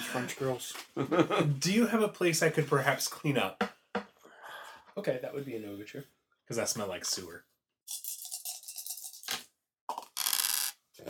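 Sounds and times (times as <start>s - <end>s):
speech: 0.1s - 3.8s, 5.0s - 8.2s
laughter: 1.0s - 1.6s
dice rattling and clattering across a hard surface: 7.9s - 10.8s.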